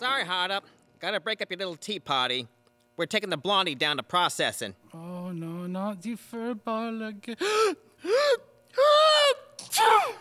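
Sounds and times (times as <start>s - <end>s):
speech: 0.2s - 8.4s
person sneezing: 9.6s - 10.1s.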